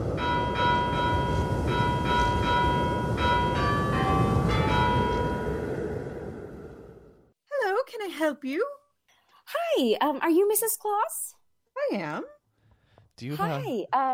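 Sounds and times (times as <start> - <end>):
doorbell chiming: 0.2 - 5.7
speech: 8.3 - 8.8, 9.7 - 12.4, 13.2 - 14.1.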